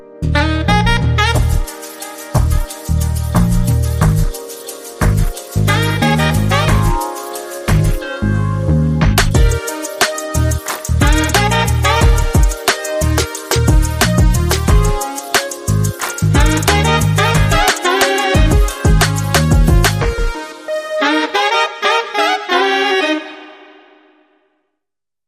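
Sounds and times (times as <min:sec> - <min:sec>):
sassy saxophone playing: 0:00.3 - 0:08.4, 0:09.4 - 0:24.4.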